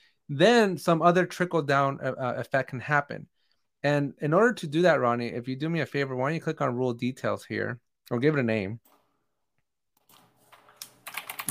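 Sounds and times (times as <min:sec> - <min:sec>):
speech: 0:00.3 - 0:08.9
rapid typing on a computer keyboard: 0:10.0 - 0:11.5.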